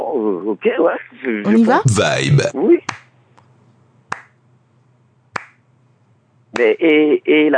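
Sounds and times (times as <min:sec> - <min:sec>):
speech: 0:00.1 - 0:03.1, 0:06.6 - 0:07.5
faint low hum: 0:01.5 - 0:07.5
sharp crisp hand claps keeping a slow beat: 0:04.1 - 0:04.4, 0:05.3 - 0:05.6.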